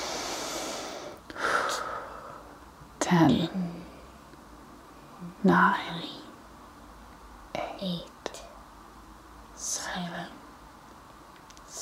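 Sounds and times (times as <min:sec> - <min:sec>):
deep breath drawn in during a slow countdown exercise: 0:00.0 - 0:02.5
quiet steady hiss: 0:00.0 - 0:11.8
speech: 0:03.0 - 0:03.8, 0:05.2 - 0:06.2, 0:07.8 - 0:08.1.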